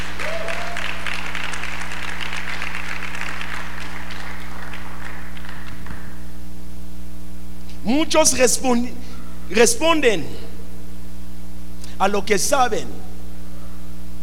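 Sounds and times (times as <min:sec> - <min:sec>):
crowd applauding: 0:00.0 - 0:06.3
constant low electrical hum: 0:00.0 - 0:14.2
speech: 0:07.9 - 0:10.4, 0:12.0 - 0:13.0.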